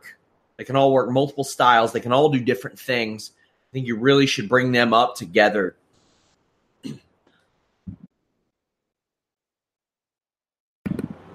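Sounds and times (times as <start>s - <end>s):
speech: 0.6s - 5.8s, 6.8s - 7.0s
coughing: 6.8s - 7.1s.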